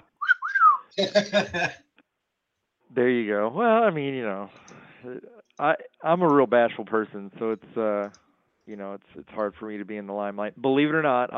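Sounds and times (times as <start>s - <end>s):
person whistling two sliding notes: 0.0s - 1.1s
laughter: 1.0s - 1.8s
speech: 1.0s - 1.8s, 2.9s - 11.3s.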